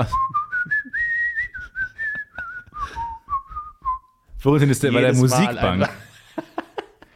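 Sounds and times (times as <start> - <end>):
speech: 0.0 - 0.2, 4.4 - 6.1
person whistling a card payment jingle: 0.0 - 4.3
laughter: 5.1 - 7.1.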